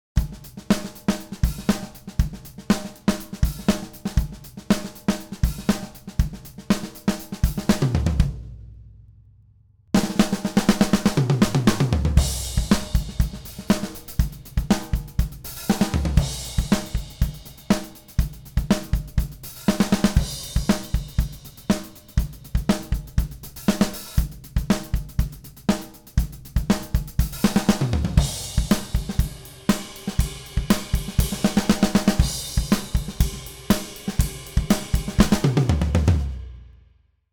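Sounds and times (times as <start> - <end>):
full drum kit recorded with Beta mics: 0.2 - 8.9, 10.0 - 36.8.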